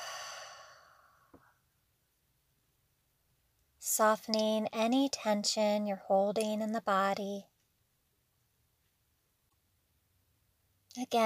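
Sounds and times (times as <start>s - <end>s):
slow exhale through an open mouth during a relaxation breathing exercise: 0.0s - 1.3s
speech: 4.0s - 7.5s, 11.0s - 11.2s.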